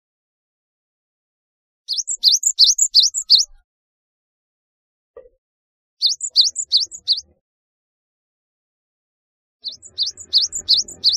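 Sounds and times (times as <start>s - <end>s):
Java sparrow high slurred chirps: 1.9s - 3.6s, 6.0s - 7.3s, 9.6s - 11.1s.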